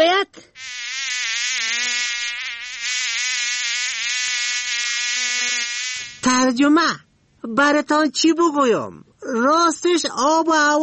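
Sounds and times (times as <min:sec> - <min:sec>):
speech: 0:00.2 - 0:00.8, 0:06.0 - 0:10.8
mosquitoes and flies buzzing: 0:00.6 - 0:06.4.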